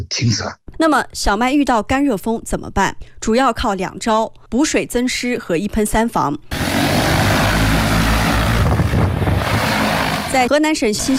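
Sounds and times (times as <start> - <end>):
speech: 0.0 - 6.7, 10.3 - 11.1
several crop-spraying drones' rotors whirring overhead spraying wheat in Xinxiang, Henan Province, China: 6.5 - 11.1.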